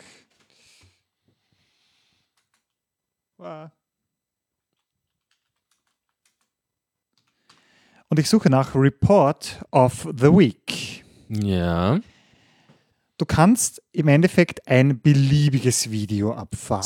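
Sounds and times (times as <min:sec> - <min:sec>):
typing on a wireless computer keyboard: 0:02.3 - 0:02.8, 0:04.8 - 0:06.6, 0:07.2 - 0:07.6
speech: 0:03.4 - 0:03.8, 0:08.1 - 0:12.1, 0:13.2 - 0:16.8.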